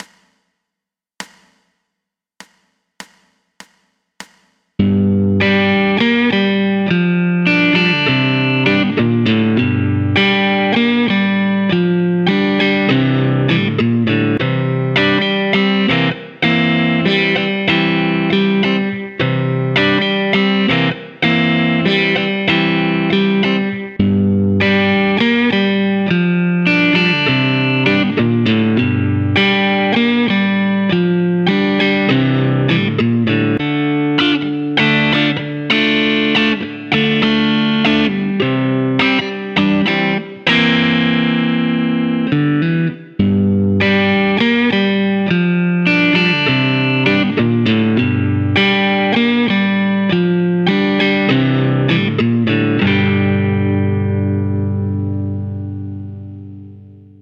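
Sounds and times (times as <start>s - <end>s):
blues riff in G at 100 BPM: 4.8s - 57.2s.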